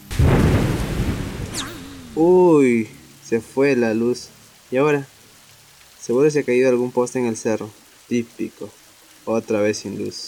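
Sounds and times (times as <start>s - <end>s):
heavy rainstorm: 0.0s - 10.2s
speech: 2.2s - 5.1s, 6.0s - 10.2s.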